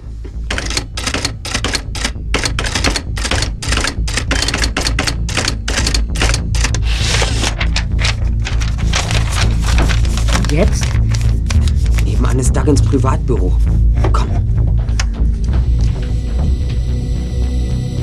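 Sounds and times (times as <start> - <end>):
rapid loud keystrokes on a secretary's typewriter: 0.5 - 11.0
steady low rumble: 6.2 - 18.0
speech: 10.6 - 10.8, 12.4 - 14.4.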